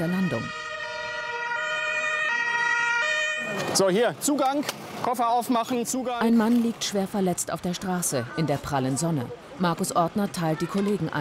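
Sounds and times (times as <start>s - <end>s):
ambulance sirens as rescue vehicles arrive: 0.0s - 4.0s
speech: 3.7s - 11.1s.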